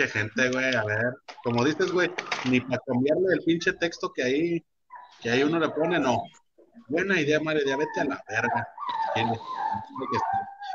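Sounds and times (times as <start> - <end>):
speech: 0.0 - 10.7
small dog whimpering and crying: 7.7 - 10.7.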